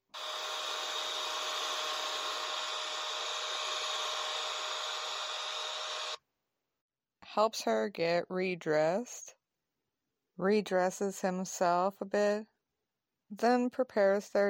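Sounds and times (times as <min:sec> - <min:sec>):
hair dryer blowing: 0:00.0 - 0:06.2
speech: 0:07.4 - 0:09.4, 0:10.4 - 0:12.5, 0:13.3 - 0:14.4.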